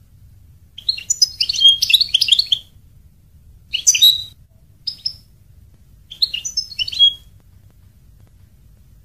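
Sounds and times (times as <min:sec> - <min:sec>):
faint low hum: 0:00.0 - 0:09.0
European goldfinch singing: 0:00.8 - 0:02.7, 0:03.7 - 0:05.3, 0:06.1 - 0:07.3.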